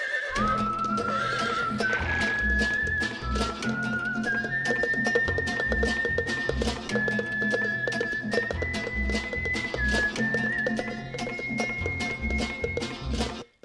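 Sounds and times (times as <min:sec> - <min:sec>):
galloping horse neighing: 0:00.0 - 0:02.9
galloping horse hoofbeats: 0:00.0 - 0:13.6.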